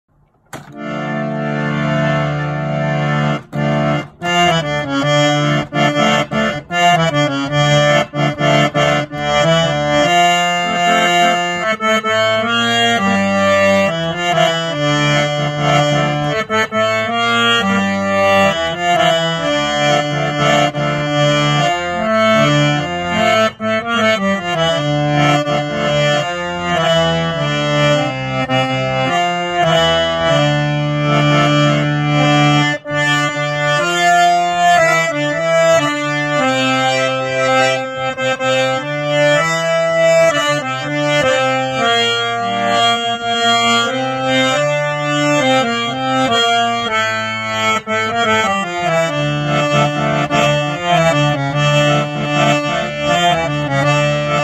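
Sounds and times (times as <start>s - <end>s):
harmonium: 0.1s - 54.4s.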